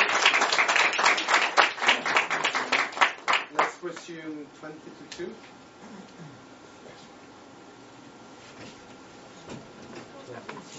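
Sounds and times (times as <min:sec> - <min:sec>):
audience applauding a presentation: 0:00.0 - 0:03.8
speech: 0:03.8 - 0:07.1.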